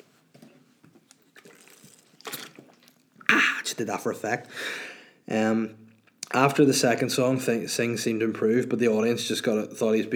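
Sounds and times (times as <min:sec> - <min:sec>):
small gulps of water: 0:00.9 - 0:05.2
sipping water: 0:00.9 - 0:06.5
breathy slurp: 0:01.2 - 0:03.8
speech: 0:03.8 - 0:10.1.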